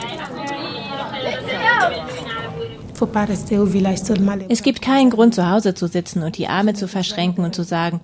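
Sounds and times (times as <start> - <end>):
clinks: 0.0 - 0.6
crowd chatter at a market where women sell fish or vegetables: 0.0 - 8.0
speech: 3.0 - 8.0.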